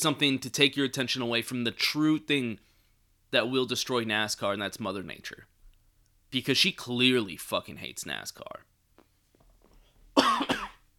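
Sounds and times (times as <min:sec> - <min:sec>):
speech: 0:00.0 - 0:02.7, 0:03.3 - 0:05.5, 0:06.3 - 0:08.7
person coughing: 0:10.2 - 0:10.9.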